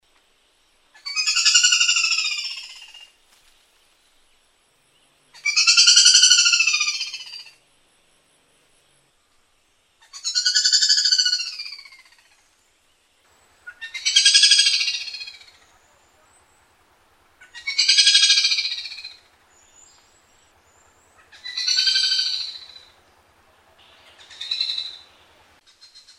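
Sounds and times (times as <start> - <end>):
Sulawesi malkoha calling: 1.0 - 3.1, 5.4 - 7.6, 10.0 - 12.4, 13.4 - 26.1.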